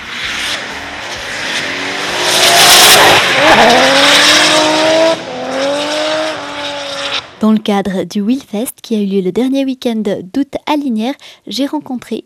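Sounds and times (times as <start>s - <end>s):
rear tire squeal of a drifting car on the track: 0.0s - 7.3s
drifting car engine revving: 0.0s - 7.4s
speech: 7.4s - 12.2s.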